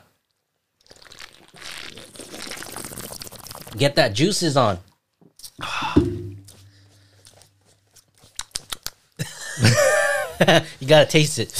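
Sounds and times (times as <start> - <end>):
Old English malt liquor pouring and spilling: 0.8 - 4.0
speech: 3.8 - 4.9, 10.4 - 11.5
laughter: 9.2 - 10.7.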